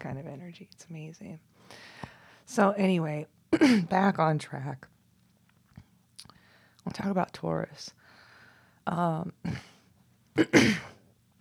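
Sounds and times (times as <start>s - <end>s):
speech: 0.0s - 4.9s, 6.8s - 8.0s, 8.8s - 9.7s, 10.4s - 10.9s
throat clearing from phlegm: 10.4s - 11.0s.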